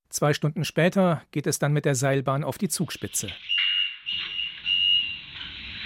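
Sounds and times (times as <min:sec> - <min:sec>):
speech: 0:00.2 - 0:04.2
high electronic reversing beeps: 0:03.4 - 0:05.5.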